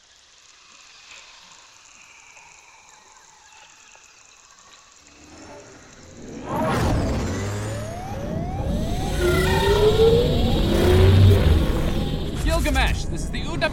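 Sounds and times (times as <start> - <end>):
loud sustained engine roar: 5.1 - 13.7
rising mechanical whines: 5.1 - 13.7.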